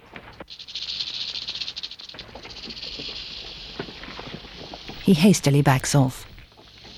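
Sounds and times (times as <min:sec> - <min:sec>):
rattlesnake tail rattling: 0:00.0 - 0:05.1, 0:06.2 - 0:06.9
speech: 0:05.1 - 0:06.3.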